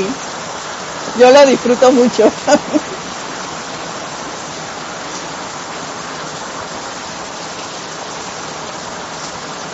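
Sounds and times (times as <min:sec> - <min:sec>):
steady rain falling: 0:00.0 - 0:09.7
speech: 0:01.2 - 0:03.0
laughter: 0:02.2 - 0:03.0.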